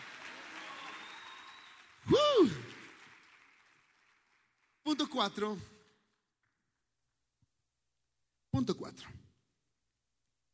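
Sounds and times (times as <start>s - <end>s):
crowd applauding: 0.0s - 6.0s
single loud voice cheering: 0.6s - 2.8s
speech: 5.0s - 5.8s.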